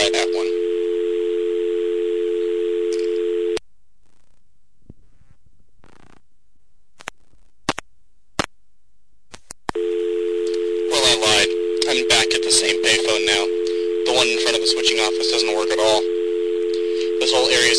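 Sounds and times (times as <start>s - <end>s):
telephone dial tone: 0.0s - 3.6s, 9.8s - 17.7s
faint rustles: 4.0s - 6.2s.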